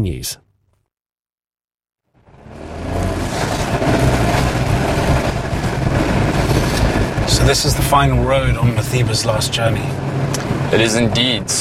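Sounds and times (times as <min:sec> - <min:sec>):
speech: 0:00.0 - 0:00.4, 0:07.4 - 0:10.0, 0:10.7 - 0:11.5
IndyCar race car engines roaring during a street race in Washington: 0:02.2 - 0:11.5.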